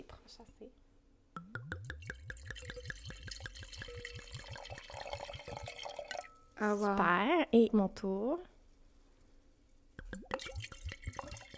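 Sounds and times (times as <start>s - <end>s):
speech: 0.3s - 0.9s, 6.6s - 8.5s
Pinot noir rosé wine pouring from a bottle into a glass: 1.6s - 6.4s, 10.0s - 11.5s.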